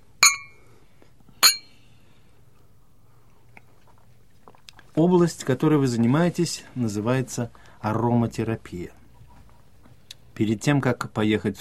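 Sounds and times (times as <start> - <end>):
glasses clinking in a toast: 0.2 - 0.6, 1.4 - 1.7
speech: 5.0 - 9.0, 10.4 - 11.5.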